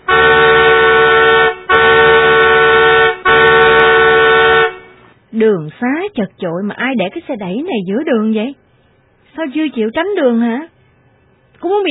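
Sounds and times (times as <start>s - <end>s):
Mercedes car horn honking angrily at a stroller outside a post office: 0.0s - 5.1s
speech: 5.4s - 8.6s, 9.4s - 10.7s, 11.6s - 11.8s.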